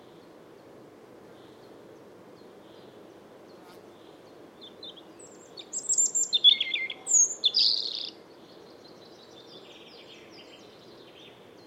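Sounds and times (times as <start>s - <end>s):
European robin singing, Erithacus rubecula: 4.0s - 11.6s.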